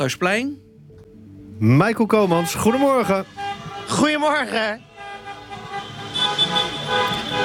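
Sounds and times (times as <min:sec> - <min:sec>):
speech: 0:00.0 - 0:00.7, 0:01.6 - 0:04.9
constant road rumble of street traffic: 0:00.0 - 0:07.4
car horns honking in gridlocked city centre traffic: 0:02.0 - 0:07.4.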